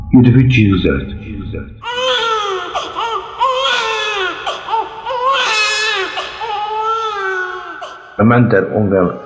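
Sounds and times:
speech: 0.1s - 1.8s, 8.2s - 9.2s
newborn baby crying with high-pitched wails: 1.8s - 8.2s.

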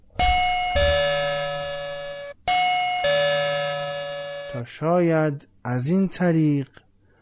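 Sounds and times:
bright two-tone warning bell chime: 0.2s - 4.6s
speech: 4.6s - 6.8s.

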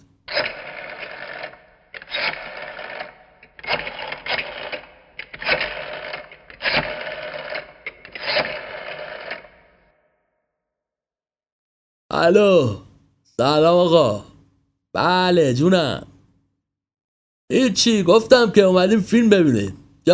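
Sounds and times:
telephone number being dialed on a rotary phone: 0.0s - 10.0s
speech: 12.2s - 12.8s, 13.4s - 14.3s, 14.9s - 16.1s, 17.5s - 20.1s.

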